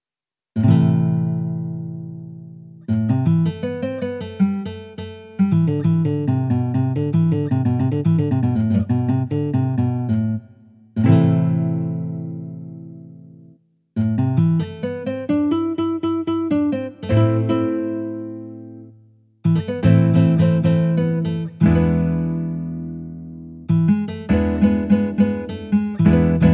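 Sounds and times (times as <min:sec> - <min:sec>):
nylon guitar: 0:00.6 - 0:26.5.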